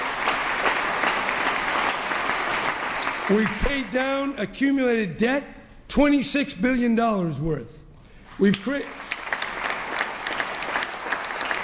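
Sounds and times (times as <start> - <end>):
crowd applause: 0.0 - 4.0, 8.7 - 11.6
speech: 3.3 - 7.8, 8.4 - 9.0.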